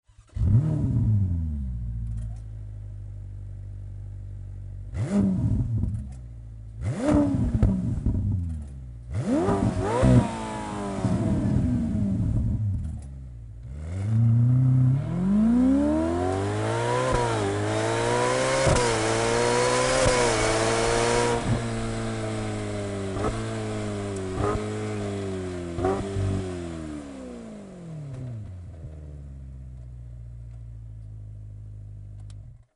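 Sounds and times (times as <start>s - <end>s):
Ferrari F8 Tributo stock exhaust system: 0.2s - 32.6s.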